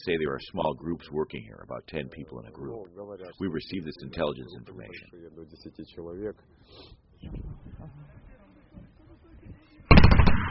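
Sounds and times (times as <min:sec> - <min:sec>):
speech: 0:00.0 - 0:08.3
men talking quietly: 0:00.0 - 0:10.0
machine gun firing warning shots toward enemy positions in a conflict zone: 0:09.9 - 0:10.4.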